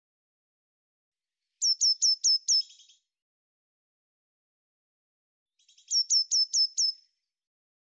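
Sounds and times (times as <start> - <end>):
Eurasian blue tit calling: 1.6 - 3.0, 5.6 - 7.0.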